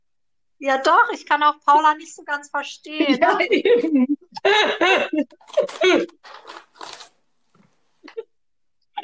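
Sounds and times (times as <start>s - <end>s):
speech: 0.6s - 6.9s
laughter: 3.0s - 6.1s
crinkly paper bag rustling: 5.3s - 8.1s.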